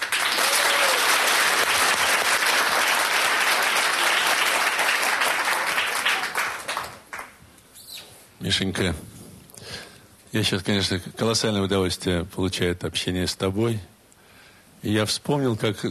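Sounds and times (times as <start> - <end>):
large audience applauding: 0.0 - 7.4
speech: 8.4 - 9.1, 10.3 - 13.9, 14.8 - 15.8.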